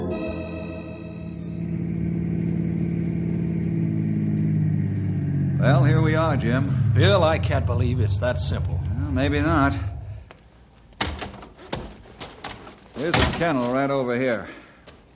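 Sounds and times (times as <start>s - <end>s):
car engine rumbling as the vehicle drives along: 0.2s - 11.0s
speech: 6.4s - 9.9s, 13.0s - 14.6s.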